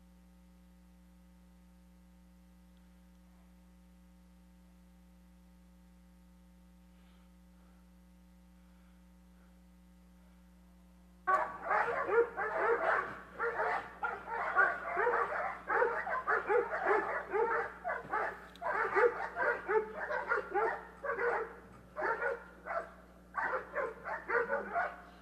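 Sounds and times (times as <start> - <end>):
faint steady electrical hum: 0.0 - 25.1
dog barking in rapid yaps and yips: 11.3 - 25.1.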